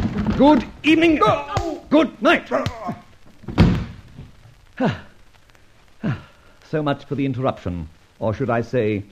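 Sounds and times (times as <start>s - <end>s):
speech: 0.4s - 2.9s, 4.8s - 5.1s, 6.0s - 9.0s
door opening with a heavy thud: 3.4s - 4.4s.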